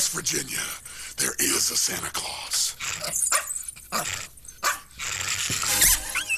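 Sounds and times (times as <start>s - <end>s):
speech: 0.2s - 3.3s
dog yelping and whimpering as it is kicked into a fan: 3.0s - 6.3s.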